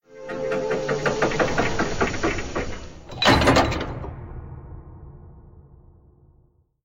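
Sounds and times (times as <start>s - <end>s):
big door opening: 0.1s - 4.5s.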